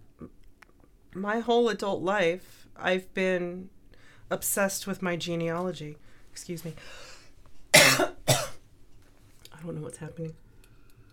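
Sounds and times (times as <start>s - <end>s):
speech: 1.2s - 7.2s, 7.9s - 8.1s, 9.6s - 10.4s
person coughing: 7.7s - 8.6s.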